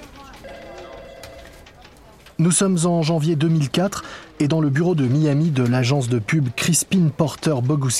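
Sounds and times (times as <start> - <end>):
constant murmur of noise: 0.0 - 7.9
mobile phone ringing in an advertising agency office: 0.4 - 1.7
speech: 2.4 - 7.9.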